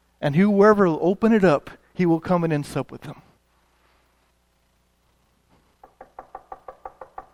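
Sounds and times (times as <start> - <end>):
speech: 0.2 - 3.3
knocking on a door: 5.8 - 7.3.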